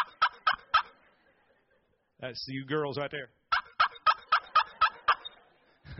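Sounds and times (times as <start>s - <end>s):
tom turkey gobbling: 0.0s - 1.0s, 3.5s - 5.4s
speech: 2.2s - 3.4s.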